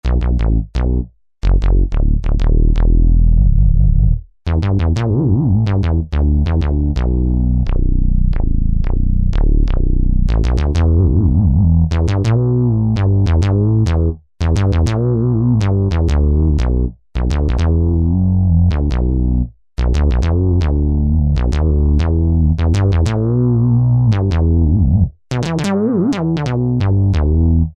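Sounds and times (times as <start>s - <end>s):
synth bass: 0.0s - 27.7s.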